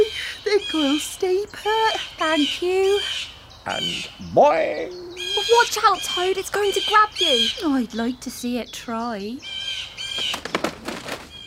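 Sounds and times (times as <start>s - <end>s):
speech: 0.5s - 10.7s
bird wings flapping in an attack swoop: 10.0s - 11.4s.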